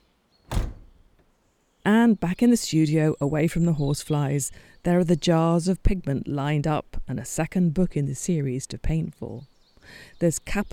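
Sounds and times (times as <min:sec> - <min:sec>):
studio door slamming shut: 0:00.5 - 0:01.2
speech: 0:01.9 - 0:10.7.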